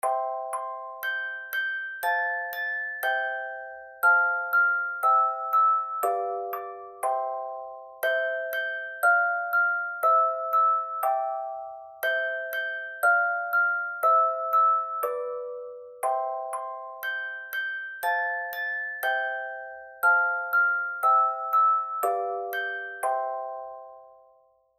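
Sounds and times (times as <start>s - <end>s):
twinkling harmony: 0.0s - 24.3s.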